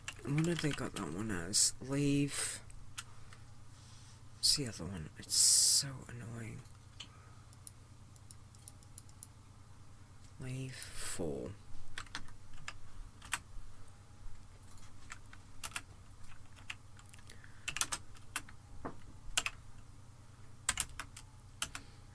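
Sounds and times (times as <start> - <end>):
typing on a computer keyboard: 0.0 - 1.0, 7.5 - 9.3, 12.0 - 13.4, 14.8 - 18.6, 19.4 - 19.6, 20.7 - 21.8
steady low hum: 0.0 - 22.1
speech: 0.3 - 2.6, 4.4 - 6.8, 10.4 - 11.6.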